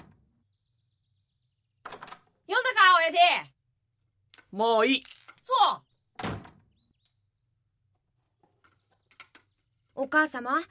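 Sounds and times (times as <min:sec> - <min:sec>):
speech: 0:04.5 - 0:05.9, 0:10.0 - 0:10.6
door slamming shut: 0:06.2 - 0:06.7.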